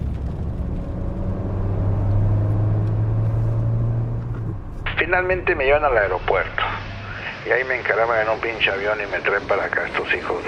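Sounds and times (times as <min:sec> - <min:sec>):
car engine accelerating: 0:00.0 - 0:07.4
speech: 0:05.1 - 0:06.8, 0:07.4 - 0:10.4.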